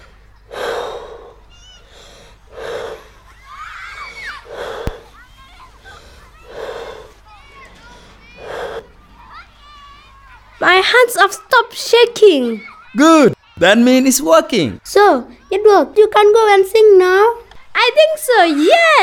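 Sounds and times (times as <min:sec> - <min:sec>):
slow deep breathing in and out: 0:00.0 - 0:03.3, 0:04.3 - 0:05.2, 0:05.8 - 0:07.2, 0:07.8 - 0:09.0
speech: 0:10.6 - 0:19.0.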